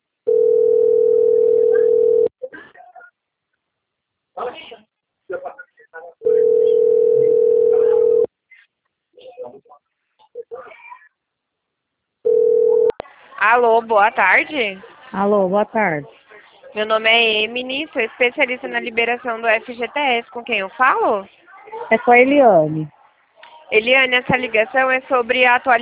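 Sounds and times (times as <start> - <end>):
telephone ringback tone while placing a call: 0.3 - 2.3, 6.3 - 8.3, 12.3 - 12.9
speech: 13.8 - 23.0, 23.7 - 25.7.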